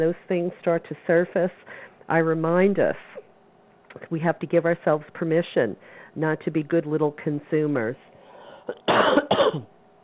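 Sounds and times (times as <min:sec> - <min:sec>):
speech: 0:00.0 - 0:03.2, 0:03.9 - 0:08.1, 0:08.7 - 0:09.7
person with a cold coughing harshly: 0:08.7 - 0:09.7.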